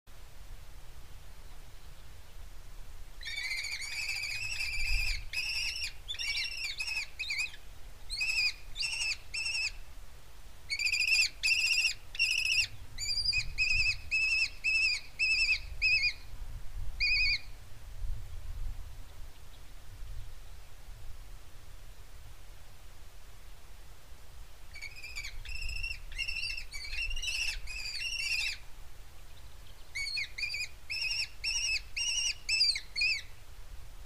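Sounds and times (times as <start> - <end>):
lesser kestrel calling: 3.2 - 9.8, 10.7 - 16.3, 17.0 - 17.5, 24.7 - 28.6, 29.3 - 33.4.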